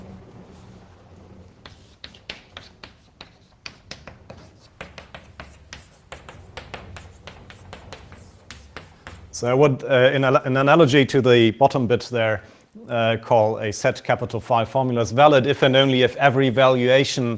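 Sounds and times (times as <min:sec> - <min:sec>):
scratchy strokes writing out logic formulas during a lecture: 0:00.5 - 0:09.4
speech: 0:09.4 - 0:17.3.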